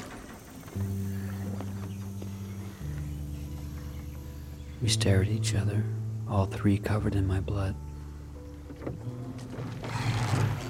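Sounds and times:
continuous low rumble of the boat: 0.0s - 10.6s
speech: 4.8s - 7.9s, 8.8s - 10.1s
oars dipping and pulling through water rowing a boat: 8.6s - 10.6s.

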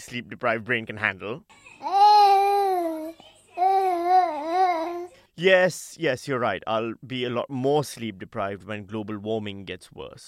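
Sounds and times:
speech: 0.0s - 2.0s, 5.4s - 10.2s
toddler babbling sing-song: 1.8s - 5.1s.

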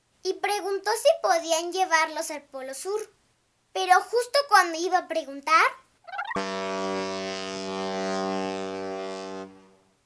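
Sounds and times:
speech: 0.6s - 6.4s
ship horn blast at a pier: 6.4s - 9.9s.

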